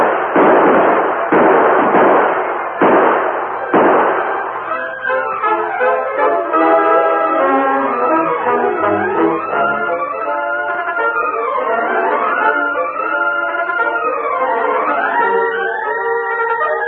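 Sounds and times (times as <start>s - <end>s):
gunfire bursts in a Western radio drama shootout: 0.0s - 5.2s
orchestral music: 3.6s - 16.8s.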